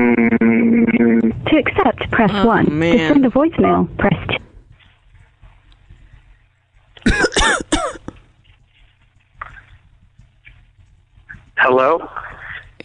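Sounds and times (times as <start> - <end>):
thin humming phone line: 0.0 - 4.4
soft throaty noise: 0.0 - 12.8
speech: 1.6 - 4.4
caller coughing harshly over a phone line: 7.0 - 8.2.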